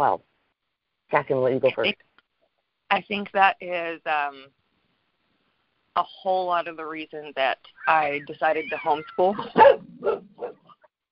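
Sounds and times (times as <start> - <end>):
speech: 0.0 - 0.3, 1.1 - 2.1, 2.9 - 4.6, 6.0 - 10.6
dog barking: 9.3 - 10.7.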